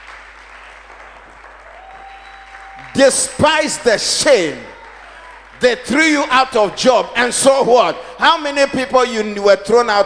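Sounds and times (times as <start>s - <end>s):
audience applause: 0.0s - 6.8s
speech: 2.9s - 4.8s, 5.6s - 10.0s.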